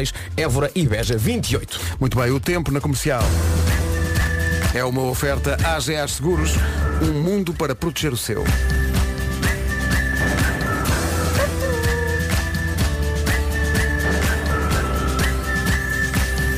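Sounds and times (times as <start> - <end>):
speech: 0.0 - 3.8, 4.7 - 9.0
dense loud backing music or bustling noise: 3.0 - 16.5
person whistling a short melody: 3.8 - 5.3, 8.5 - 16.5.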